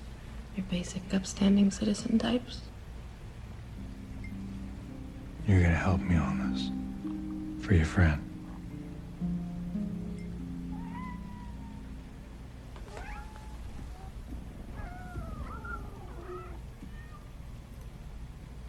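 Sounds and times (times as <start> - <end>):
steady low hum: 0.0 - 18.6
speech: 0.6 - 2.7, 5.5 - 6.8, 7.7 - 8.3
several cats meowing in overlapping drawn-out calls: 10.5 - 12.2, 12.8 - 17.4.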